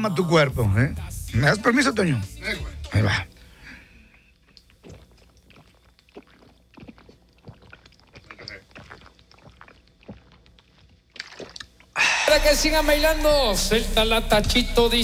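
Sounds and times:
speech: 0:00.0 - 0:03.3, 0:12.3 - 0:15.0
gulping water from a bottle: 0:02.4 - 0:12.3
faint breath: 0:03.3 - 0:04.3, 0:12.0 - 0:12.4.

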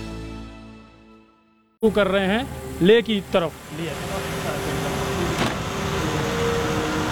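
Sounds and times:
speech: 0:01.8 - 0:04.9
truck engine drone heard from inside the cab: 0:01.8 - 0:07.1
truck road rumble: 0:01.8 - 0:07.1.

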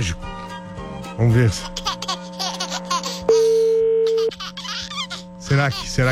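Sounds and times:
speech: 0:01.2 - 0:01.8, 0:05.5 - 0:06.1
telephone tone while placing a call: 0:03.5 - 0:04.2.

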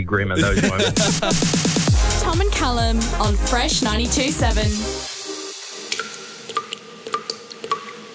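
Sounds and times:
speech: 0:00.0 - 0:05.1
laughter: 0:00.3 - 0:01.7
tap dripping into water: 0:05.9 - 0:08.0.

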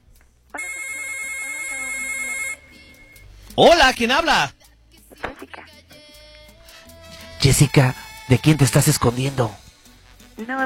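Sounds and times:
telephone ringing with a steady electronic tone for an incoming call: 0:00.6 - 0:03.2
speech: 0:03.6 - 0:04.6, 0:07.5 - 0:09.6, 0:10.4 - 0:10.6.

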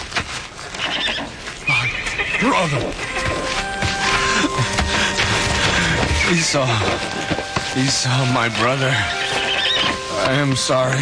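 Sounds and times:
horse hooves clip-clopping: 0:00.0 - 0:10.9
horse neighing loudly: 0:00.8 - 0:03.5, 0:09.3 - 0:10.0
speech: 0:02.4 - 0:03.2, 0:06.3 - 0:09.2, 0:10.2 - 0:10.9.

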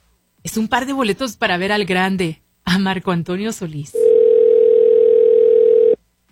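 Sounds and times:
speech: 0:00.4 - 0:04.1
telephone ringing tone on an outgoing call: 0:04.0 - 0:06.0.

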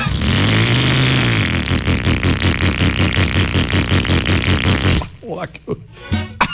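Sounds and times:
rattly old junky motorcycle engine sputtering: 0:00.0 - 0:05.1
person talking: 0:05.2 - 0:06.0.

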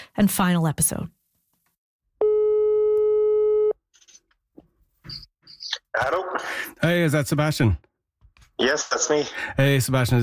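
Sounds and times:
speech: 0:00.2 - 0:01.2, 0:06.0 - 0:07.9, 0:08.6 - 0:10.2
telephone ringing tone on the line during outgoing call: 0:02.2 - 0:03.8.

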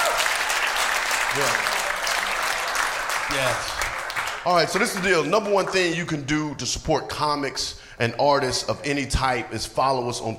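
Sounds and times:
audience applauding at a live comedy show: 0:00.0 - 0:06.0
speech: 0:01.4 - 0:01.7, 0:03.3 - 0:03.8, 0:04.4 - 0:10.3.

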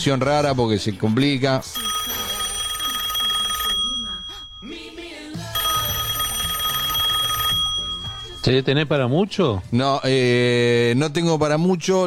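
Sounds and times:
speech: 0:00.0 - 0:02.0, 0:08.4 - 0:12.0
telephone ringing on an outgoing call: 0:00.0 - 0:09.0.

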